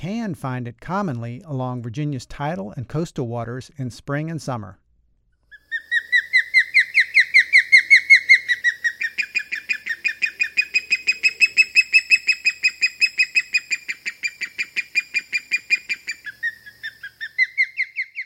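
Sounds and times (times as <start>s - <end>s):
speech: 0.0s - 4.8s
osprey high-pitched whistled chirping calls: 5.5s - 18.2s.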